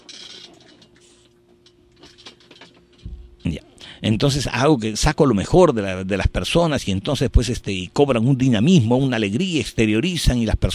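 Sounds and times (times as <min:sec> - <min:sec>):
electric fan motor humming: 0:00.0 - 0:10.2
speech: 0:04.0 - 0:10.7.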